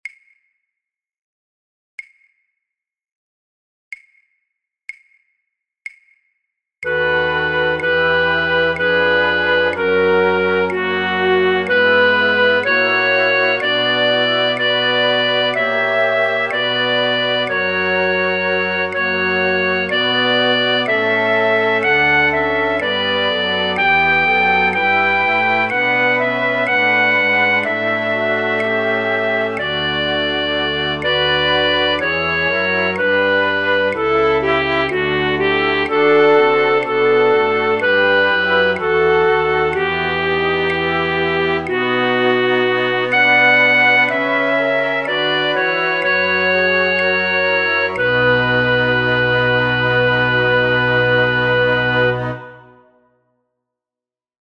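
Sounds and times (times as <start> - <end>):
flute 4B part of a flute orchestra: 6.8 - 53.2.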